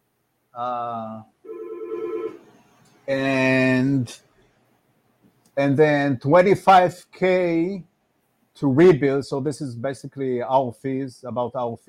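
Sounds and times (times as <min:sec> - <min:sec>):
speech: 0:00.6 - 0:01.4, 0:03.1 - 0:04.3, 0:05.6 - 0:07.9, 0:08.6 - 0:11.8
telephone ringing: 0:01.5 - 0:02.5.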